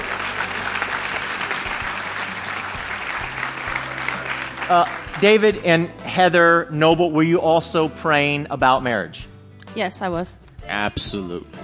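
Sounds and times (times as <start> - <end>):
room full of people clapping: 0.0 - 5.9
speech: 4.7 - 11.6.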